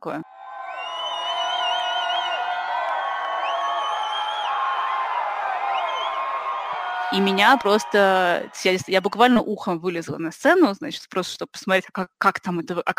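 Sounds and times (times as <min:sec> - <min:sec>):
speech: 0:00.0 - 0:00.3, 0:07.1 - 0:12.9
large theatre audience cheering and applauding: 0:00.2 - 0:09.5
many voices whooping and shouting: 0:00.3 - 0:09.4.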